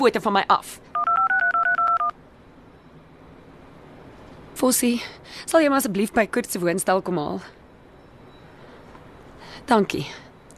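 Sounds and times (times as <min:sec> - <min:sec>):
speech: 0:00.0 - 0:00.9, 0:04.6 - 0:07.6, 0:09.6 - 0:10.5
cellphone keypad dialing tones: 0:01.0 - 0:02.2.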